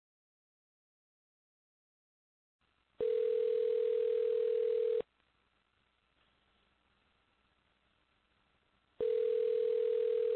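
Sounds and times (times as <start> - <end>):
electronic ringback tone on an outgoing phone call: 3.0 - 5.0, 9.0 - 10.3.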